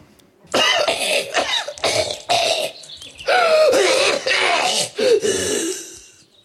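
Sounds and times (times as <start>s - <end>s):
loud harsh human coughs: 0.5s - 6.0s.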